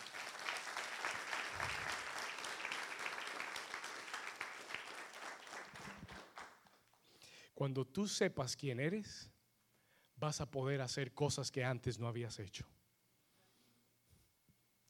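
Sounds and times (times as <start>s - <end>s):
audience applauding: 0.0s - 6.9s
speech: 7.6s - 9.3s, 10.2s - 12.8s.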